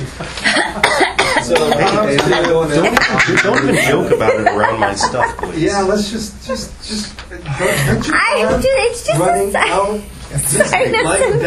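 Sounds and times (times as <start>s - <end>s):
laughter: 0.0s - 8.0s, 10.3s - 11.4s
person coughing deliberately in harsh raspy bursts: 0.8s - 1.8s
speech: 1.5s - 11.4s.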